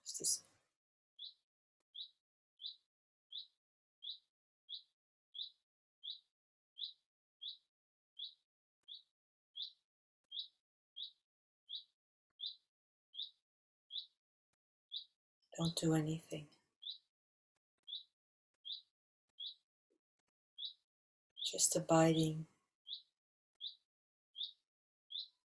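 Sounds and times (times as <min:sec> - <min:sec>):
speech: 0:00.2 - 0:00.5, 0:15.6 - 0:16.6, 0:21.5 - 0:22.5
bird repeating a short high chirp: 0:01.2 - 0:14.2, 0:14.9 - 0:15.8, 0:16.8 - 0:17.1, 0:17.8 - 0:19.6, 0:20.6 - 0:20.8, 0:21.4 - 0:25.4.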